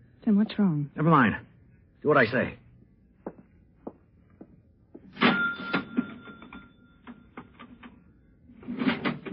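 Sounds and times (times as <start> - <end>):
speech: 0.3 - 2.6
cash register bell-like ring: 5.2 - 7.3
cash register drawer opening with clattering: 5.2 - 7.8, 8.6 - 9.3
cash register mechanical clicks: 5.2 - 8.0.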